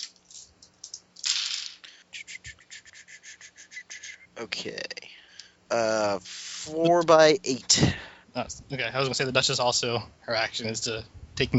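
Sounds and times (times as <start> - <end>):
dice rolled for a tabletop game rattling and clattering: 0.0 - 1.9
speech: 4.4 - 5.0, 5.7 - 11.5.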